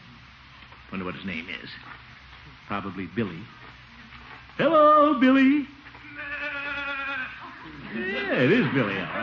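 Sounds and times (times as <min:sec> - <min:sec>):
speech: 0:00.9 - 0:03.8, 0:04.6 - 0:05.8, 0:07.9 - 0:09.2
horned goat bleating: 0:06.0 - 0:08.3
laughter: 0:06.5 - 0:09.2.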